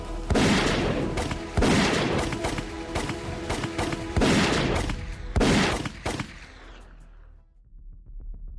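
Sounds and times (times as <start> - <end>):
gunfire from an aimed weapon in a video game: 0.2 - 6.6.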